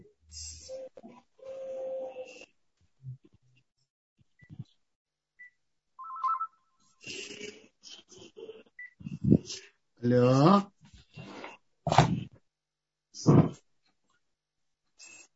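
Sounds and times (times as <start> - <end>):
electronic telephone dialing tones and clicks: 6.0 - 6.5
short beeps on the telephone line: 6.0 - 6.8
speech: 10.0 - 10.7.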